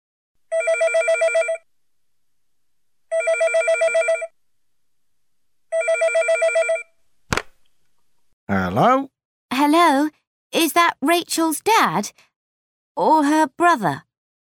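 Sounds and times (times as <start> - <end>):
telephone ringing with warbling electronic trill: 0.5 - 1.7, 3.1 - 4.4, 5.7 - 6.9
speech: 8.5 - 12.3, 13.0 - 14.1.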